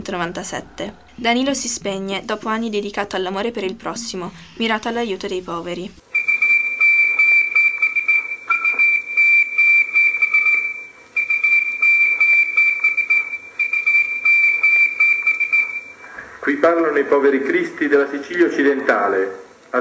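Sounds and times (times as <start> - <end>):
speech: 0.0 - 6.0, 17.0 - 19.7
high whistle-like SOS distress signal tone: 6.1 - 16.1.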